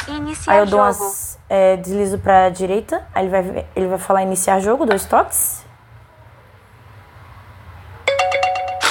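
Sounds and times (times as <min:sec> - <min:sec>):
speech: 0:00.1 - 0:05.6
phone notification chime: 0:08.1 - 0:08.9.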